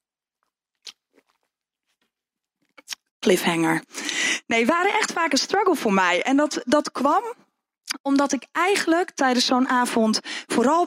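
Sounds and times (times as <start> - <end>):
person sipping a drink with wet mouth and swallowing sounds: 0.4 - 3.1
speech: 3.3 - 7.4, 8.0 - 10.8.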